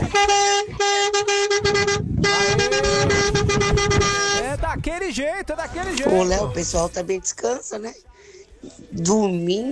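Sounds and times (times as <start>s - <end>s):
loud vehicle horn honking: 0.0s - 4.6s
rumbling engine: 0.0s - 7.4s
road noise: 0.0s - 9.7s
speech: 4.8s - 9.7s.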